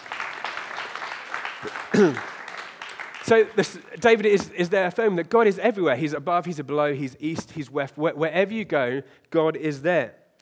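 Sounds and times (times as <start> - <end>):
audience applause: 0.0 - 4.0
speech: 1.6 - 2.3, 3.3 - 10.2.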